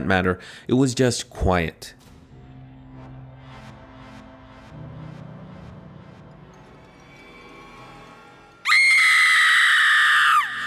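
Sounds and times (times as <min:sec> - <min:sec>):
speech: 0:00.1 - 0:02.0
woman's piercing scream echoing through a house at night: 0:08.7 - 0:10.6.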